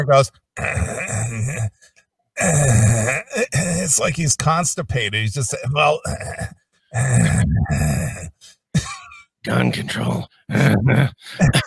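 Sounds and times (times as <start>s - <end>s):
speech: 0.0s - 1.8s, 2.4s - 11.6s
man imitating an old man grunting and groaning: 0.6s - 4.6s, 5.5s - 9.2s, 10.5s - 11.6s.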